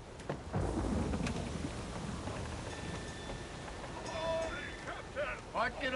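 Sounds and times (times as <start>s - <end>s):
steady heavy rain in a thunderstorm: 0.0s - 5.9s
deep rolling rumble of thunder: 0.3s - 4.0s
speech: 5.6s - 5.9s.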